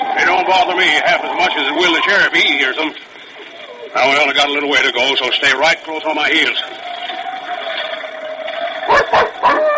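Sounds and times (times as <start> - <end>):
steady tonal background: 0.0 - 9.5
speech: 0.5 - 3.2, 3.9 - 6.9, 9.1 - 9.7
dog barking and yipping: 8.9 - 9.7.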